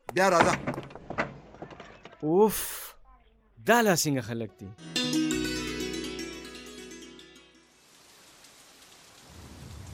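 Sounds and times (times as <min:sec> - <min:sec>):
speech: 0:00.2 - 0:00.8, 0:02.2 - 0:03.0, 0:03.6 - 0:04.9
sustained tonal sound: 0:04.8 - 0:07.7
heavy rain: 0:07.7 - 0:09.9.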